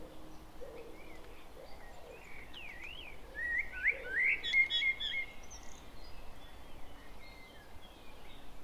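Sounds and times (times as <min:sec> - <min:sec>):
common blackbird Turdus merula singing a fluted warble: 0:00.0 - 0:08.4.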